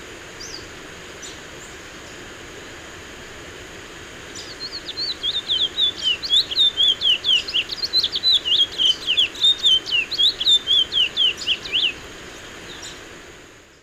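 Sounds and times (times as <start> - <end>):
chestnut-bellied seed finch Oryzoborus angolensis singing: 4.3 - 13.0.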